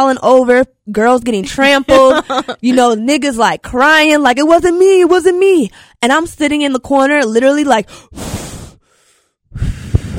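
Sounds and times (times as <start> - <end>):
speech: 0.0 - 8.4
laughter: 1.9 - 2.7
heavy anxious panicked breathing: 7.9 - 10.1.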